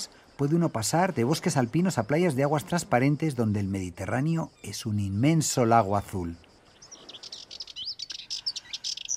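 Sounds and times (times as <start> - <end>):
speech: 0.0 - 6.5
Sardinian warbler Curruca melanocephala chattering call in gardens around historic villas: 6.7 - 9.1.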